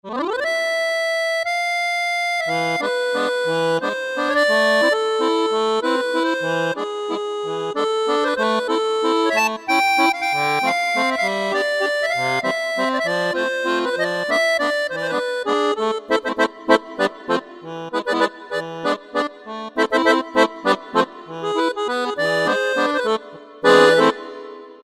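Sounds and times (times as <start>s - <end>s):
small accordion voice on a Yamaha PSR-3000 keyboard: 0.0s - 24.8s.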